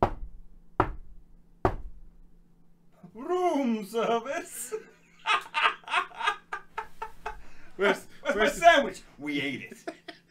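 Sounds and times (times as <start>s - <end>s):
heavy knocks on a door by a resident assistant: 0.0s - 2.1s
speech: 3.2s - 4.9s, 7.8s - 9.9s
laughter: 4.0s - 10.2s.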